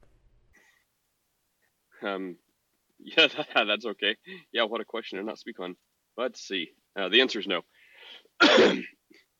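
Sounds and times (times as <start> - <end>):
speech: 2.0 - 9.0
faint breathy sounds: 4.2 - 4.6, 7.7 - 8.4
single harsh forceful cough: 8.4 - 9.0.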